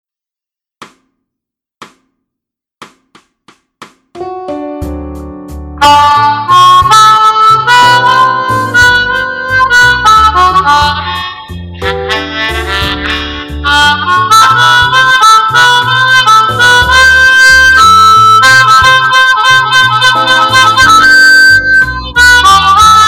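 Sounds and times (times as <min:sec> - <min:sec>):
slow blues in D on blues harmonica in G: 0:05.2 - 0:23.0.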